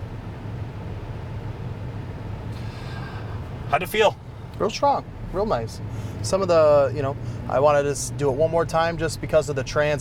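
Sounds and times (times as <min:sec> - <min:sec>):
mail truck engine rumbling: 0:00.0 - 0:09.9
road noise: 0:00.0 - 0:09.9
speech: 0:03.7 - 0:09.9.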